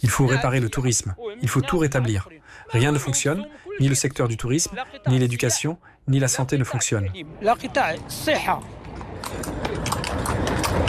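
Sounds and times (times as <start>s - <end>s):
speech: 0.0s - 10.0s
horse hooves clip-clopping on a hard street: 8.4s - 10.8s.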